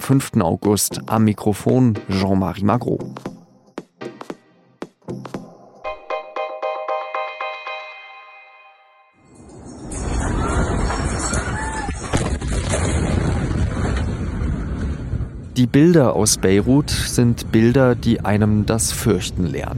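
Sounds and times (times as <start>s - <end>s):
speech: 0.1s - 3.3s, 15.6s - 19.7s
tonal chiming sounds: 5.8s - 11.3s
huge explosion: 9.8s - 16.8s.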